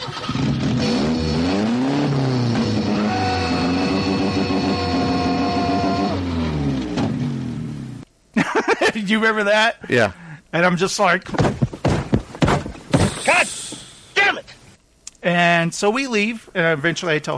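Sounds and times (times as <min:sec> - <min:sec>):
car engine revving: 0:00.0 - 0:08.0
laughter: 0:08.4 - 0:09.1
speech: 0:09.1 - 0:11.4, 0:15.3 - 0:17.3
short burst of noise: 0:12.9 - 0:14.3.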